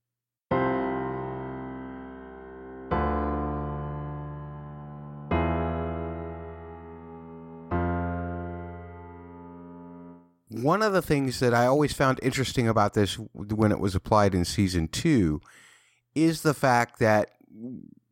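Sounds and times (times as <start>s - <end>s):
slow chords of a musical theme: 0.5s - 10.3s
speech: 10.6s - 18.0s.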